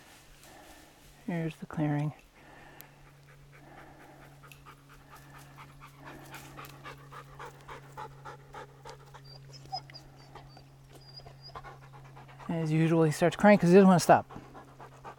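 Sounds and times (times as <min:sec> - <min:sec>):
constant low hum: 0:00.0 - 0:15.1
speech: 0:01.3 - 0:02.3, 0:12.6 - 0:14.4
dog panting during a rest break on a hiking trail: 0:02.2 - 0:15.1.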